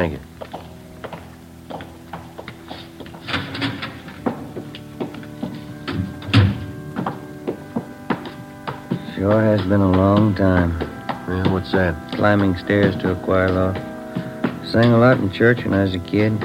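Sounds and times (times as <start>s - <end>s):
speech: 0.0s - 0.3s, 9.2s - 13.9s, 14.7s - 16.4s
door creaking as it opens and closes: 2.6s - 15.2s
clicks and knocks of a door: 3.2s - 13.2s
heavy thump: 5.8s - 15.0s.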